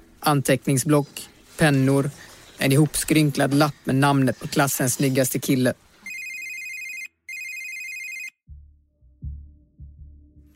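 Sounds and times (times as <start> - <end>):
speech: 0.2 - 5.8
mobile phone ringtone: 6.0 - 8.4.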